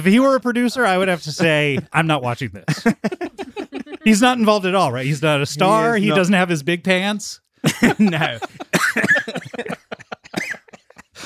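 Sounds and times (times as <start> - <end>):
speech: 0.0 - 9.1
laughter: 0.8 - 2.1, 2.7 - 6.3, 7.6 - 11.2
harsh throaty coughing fit: 8.2 - 11.2.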